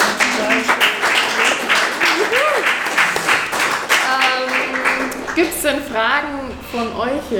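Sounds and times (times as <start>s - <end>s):
audience applause: 0.0s - 5.4s
voices and cheers: 2.0s - 2.8s
speech: 5.4s - 7.3s.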